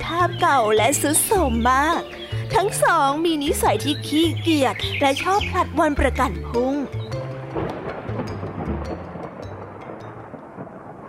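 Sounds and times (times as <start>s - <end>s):
speech: 0.1s - 7.0s
steady rain: 7.2s - 11.0s
deep thunder rumbling: 7.3s - 11.0s.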